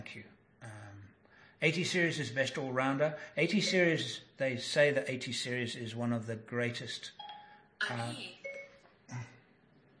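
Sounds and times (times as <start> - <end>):
speech: 0.0 - 0.8, 1.6 - 7.2, 7.8 - 8.4, 9.1 - 9.4
phone voice assistant activation chime: 3.5 - 4.2, 7.2 - 8.9.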